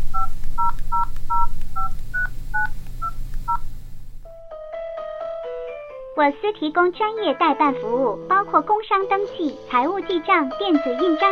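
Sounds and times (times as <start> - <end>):
low steady hum: 0.0 - 4.3
telephone keypad tones dialing a saved number: 0.1 - 3.7
speech: 6.2 - 11.3.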